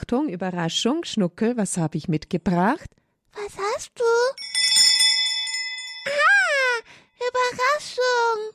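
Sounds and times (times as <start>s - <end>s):
speech: 0.1s - 4.4s
small altar bells shaken and ringing: 4.3s - 7.4s.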